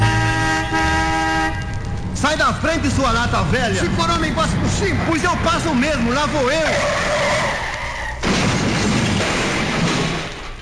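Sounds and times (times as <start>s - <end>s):
car tires squealing in a sustained skid: 0.2s - 8.4s
speech: 2.3s - 7.4s
car crashing into another car: 8.2s - 10.6s.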